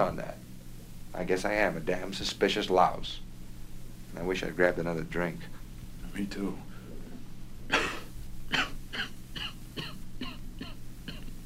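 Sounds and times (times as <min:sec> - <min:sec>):
speech: 0:00.0 - 0:00.4, 0:01.2 - 0:03.2, 0:04.1 - 0:05.6, 0:06.2 - 0:06.7
harsh rapid coughs: 0:07.7 - 0:11.3.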